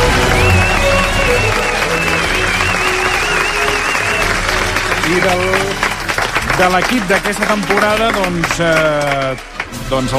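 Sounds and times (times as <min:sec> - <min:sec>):
faint cheers: 0:00.0 - 0:05.7
large audience applauding a program team receiving an award: 0:00.0 - 0:10.1
speech: 0:05.1 - 0:05.6, 0:06.6 - 0:10.1.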